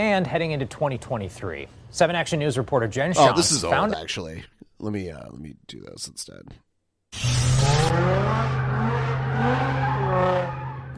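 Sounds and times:
speech: 0:00.0 - 0:08.6
car engines revving at a street meetup: 0:07.2 - 0:10.9
car tires squealing at a street meetup: 0:07.2 - 0:10.9.

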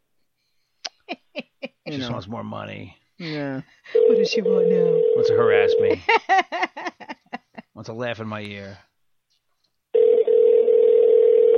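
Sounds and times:
speech: 0:01.9 - 0:07.2, 0:07.8 - 0:08.9
unanswered outgoing phone call ringback tone: 0:04.0 - 0:06.0, 0:10.0 - 0:11.5
laughter: 0:05.8 - 0:07.7.

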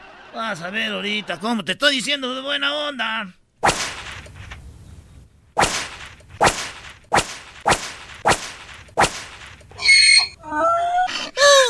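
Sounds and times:
speech: 0:00.3 - 0:03.4
whip lashes striking a donkey: 0:03.6 - 0:04.2, 0:05.6 - 0:09.5
shrill warbling wails and cries: 0:09.8 - 0:11.1.

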